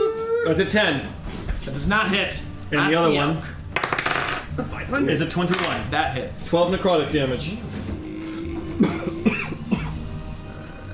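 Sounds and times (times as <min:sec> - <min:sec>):
speech: 0:00.4 - 0:03.6, 0:04.6 - 0:07.8, 0:08.8 - 0:09.1
person coughing during a tabletop game session: 0:08.6 - 0:10.0.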